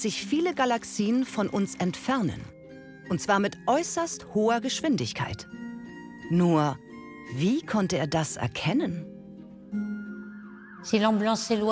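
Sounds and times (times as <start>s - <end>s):
speech: 0.0s - 5.7s, 6.3s - 9.1s, 10.8s - 11.7s
ambulance siren passing with Doppler pitch shift: 10.1s - 11.7s.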